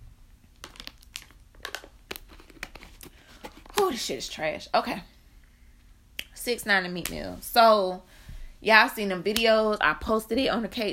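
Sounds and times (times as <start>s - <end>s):
plastic water bottle crinkling and crackling: 0.5s - 4.1s
speech: 3.9s - 5.1s, 6.4s - 10.9s.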